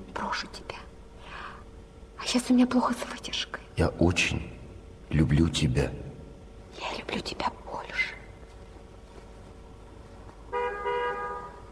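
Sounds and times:
low hum: 0.0 - 11.7
speech: 0.2 - 0.8, 2.2 - 6.0, 6.8 - 8.0
car horn honking: 10.5 - 11.7.

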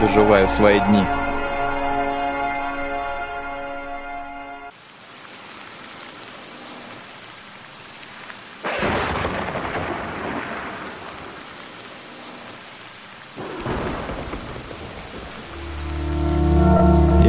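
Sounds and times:
speech: 0.0 - 1.2
heavy rain pouring: 0.0 - 3.6, 4.7 - 17.2
soft musical tones: 0.0 - 4.7, 15.5 - 17.2.

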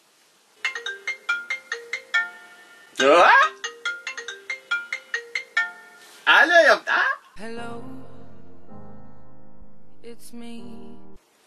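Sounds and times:
mobile phone ringtone: 0.6 - 6.2
short voiced exclamation: 3.0 - 3.6, 6.3 - 7.3.

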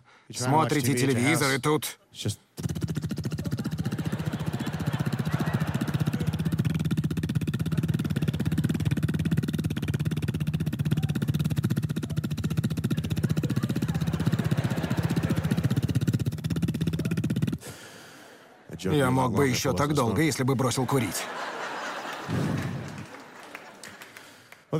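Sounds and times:
speech: 0.3 - 2.8, 18.8 - 21.5
voice imitating a motorcycle engine idling at a traffic light: 2.6 - 17.7
laughter: 3.2 - 17.1, 17.9 - 24.4.

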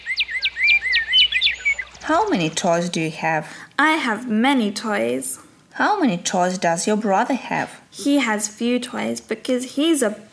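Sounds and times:
bird singing bright repeated chirping notes: 0.0 - 3.0
speech: 2.1 - 10.3.

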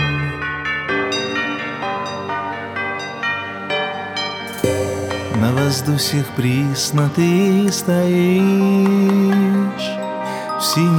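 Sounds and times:
church bells ringing: 0.0 - 7.6
speech: 5.4 - 10.0, 10.6 - 10.9.

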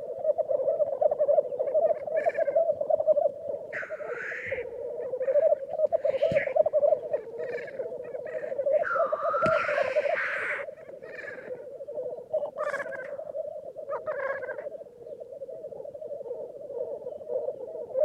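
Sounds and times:
Black grouse low bubbling: 0.0 - 18.0
Black grouse harsh hissing whooshes: 8.8 - 11.4.

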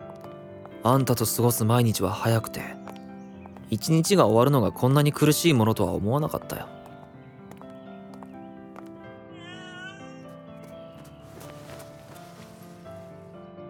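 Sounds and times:
speech: 0.8 - 2.8, 3.7 - 6.7
stray cat meowing: 9.3 - 10.3.

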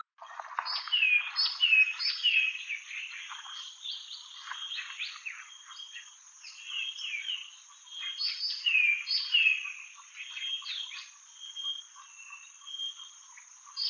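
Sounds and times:
dusky tit Melaniparus funereus whistling calls: 0.2 - 13.2.

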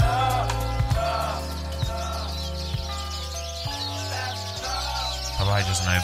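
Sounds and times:
birds chirping and twittering outdoors: 0.0 - 6.0
low droning musical tune with soft percussive hits: 0.0 - 6.0
speech: 5.6 - 6.0.

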